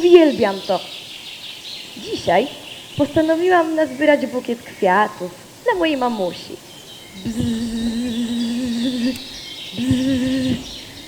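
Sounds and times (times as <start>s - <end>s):
speech: 0.0s - 1.0s, 2.0s - 7.9s
faint birdsong: 0.0s - 11.0s
bee buzzing: 7.1s - 11.0s.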